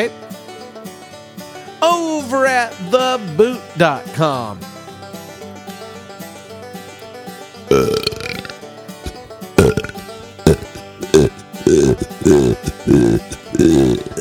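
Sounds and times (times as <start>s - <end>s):
speech: 0.0s - 0.3s, 1.8s - 4.7s, 7.7s - 8.0s, 12.3s - 14.2s
loud wet guttural belches: 7.7s - 14.2s.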